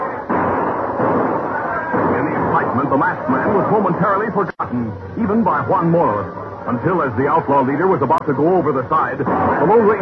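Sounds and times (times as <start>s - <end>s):
salvo of gunfire from an oncoming warship: 0.0s - 3.9s
speech: 2.8s - 10.0s.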